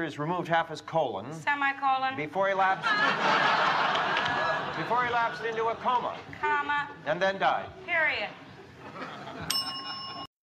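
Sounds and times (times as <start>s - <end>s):
speech: 0.0s - 8.4s
laughter: 2.7s - 7.0s, 8.4s - 10.3s
single bright bell ding: 9.5s - 10.3s.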